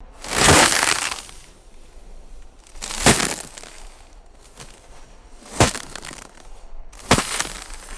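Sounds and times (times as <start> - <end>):
crunchy snow chunks hitting a soft surface: 0.1 - 7.9.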